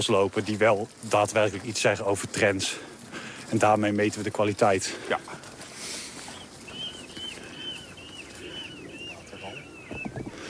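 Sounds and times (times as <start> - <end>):
speech: 0.0 - 2.9, 3.5 - 5.4
rustling: 0.0 - 10.4
water rail screaming call in winter: 6.3 - 10.4.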